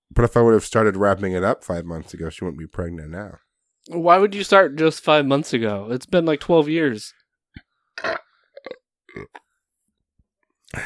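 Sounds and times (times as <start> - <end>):
speech: 0.2 - 7.2, 8.0 - 9.4
man burping: 8.0 - 9.4.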